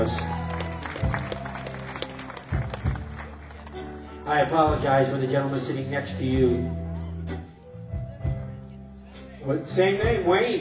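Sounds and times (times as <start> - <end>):
audience applause: 0.0 - 4.1
speech: 4.3 - 6.8, 9.5 - 10.5.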